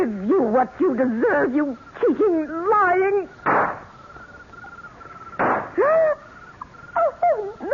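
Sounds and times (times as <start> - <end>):
speech: 0.4 - 3.5
handgun gunshot during a struggle in a house: 3.5 - 3.8, 5.4 - 5.7
person crying out: 7.0 - 7.7.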